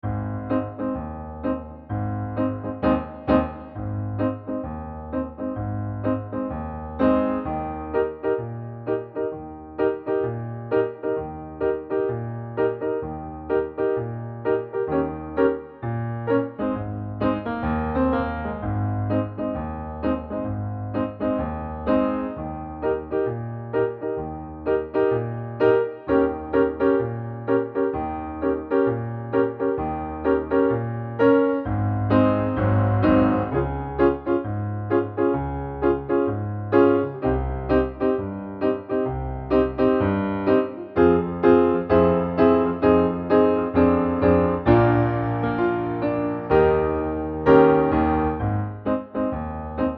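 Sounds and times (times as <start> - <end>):
Christmas piano piece in A-flat major: 0.0 - 49.9.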